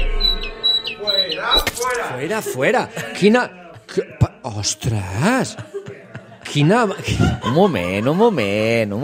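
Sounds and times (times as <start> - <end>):
small bird chirping: 0.2 - 2.0
laughter: 1.1 - 9.0
speech: 2.1 - 5.8, 6.4 - 9.0.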